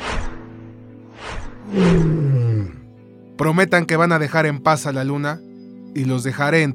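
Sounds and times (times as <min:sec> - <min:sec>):
jaguar roaring: 0:01.6 - 0:02.9
speech: 0:01.7 - 0:02.3, 0:03.4 - 0:06.7.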